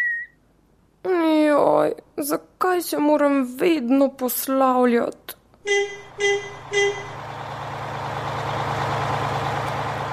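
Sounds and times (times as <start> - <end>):
speech: 1.8 - 7.2
bus horn toots: 5.7 - 7.2
large bus engine idling with a low hum: 5.7 - 10.1.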